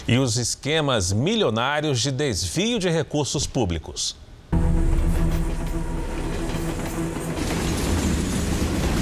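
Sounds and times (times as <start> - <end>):
speech: 0.1 - 4.2
large freight train wheels rumbling on rails: 5.4 - 9.0.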